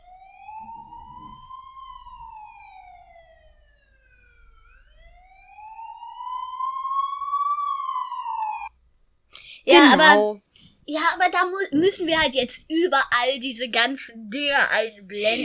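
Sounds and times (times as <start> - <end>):
ambulance siren wailing: 0.0 - 8.8
speech: 9.7 - 15.4.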